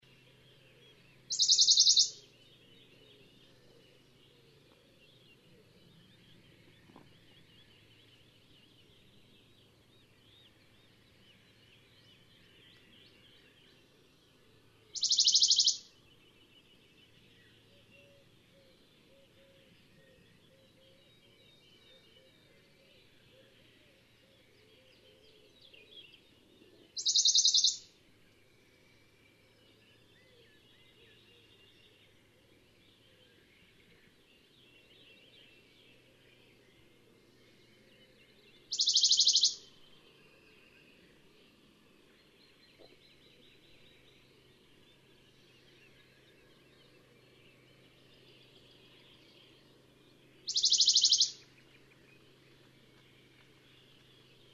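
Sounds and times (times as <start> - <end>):
Bonelli's warbler: 0.9 - 2.3, 14.9 - 15.9, 26.8 - 27.9, 38.7 - 39.8, 50.4 - 54.5.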